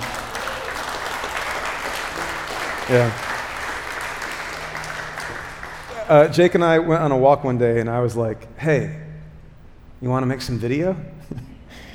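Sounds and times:
audience applause: 0:00.0 - 0:06.4
speech: 0:02.9 - 0:03.3, 0:06.1 - 0:09.0, 0:10.0 - 0:11.4.

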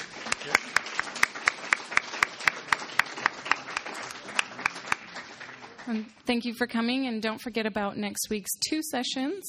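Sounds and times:
audience applauding: 0:00.0 - 0:06.1
speech: 0:05.9 - 0:09.4.

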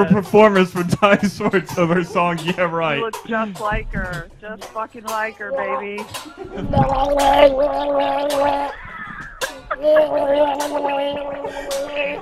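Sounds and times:
laughter: 0:00.0 - 0:03.7, 0:05.5 - 0:12.2
speech: 0:00.0 - 0:08.9, 0:09.7 - 0:12.2
person gargling: 0:06.6 - 0:12.2.

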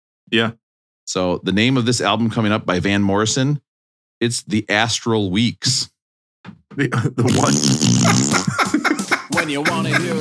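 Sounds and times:
speech: 0:00.3 - 0:03.6, 0:04.2 - 0:08.8, 0:09.5 - 0:10.1
snickering laughter: 0:07.0 - 0:10.1
mouth fart noise: 0:07.2 - 0:08.7.

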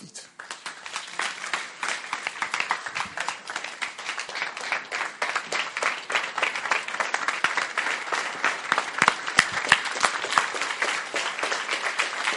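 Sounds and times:
large crowd applauding after a sermon: 0:00.0 - 0:12.3.

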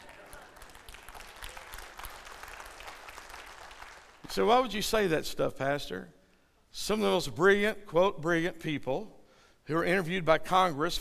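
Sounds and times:
room full of people applauding: 0:00.0 - 0:04.3
speech: 0:04.4 - 0:06.2, 0:06.8 - 0:10.9.

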